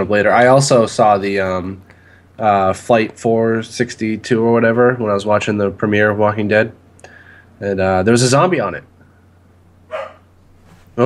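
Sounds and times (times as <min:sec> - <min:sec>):
faint steady hum in a quiet room: 0:00.0 - 0:11.0
speech: 0:00.1 - 0:06.8, 0:07.6 - 0:08.9
dog barking: 0:09.9 - 0:10.3.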